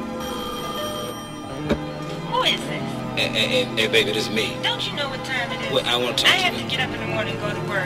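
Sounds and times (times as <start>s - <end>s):
telephone ringing with a bright bell-like tone: 0.1s - 2.0s
speech: 2.5s - 7.8s.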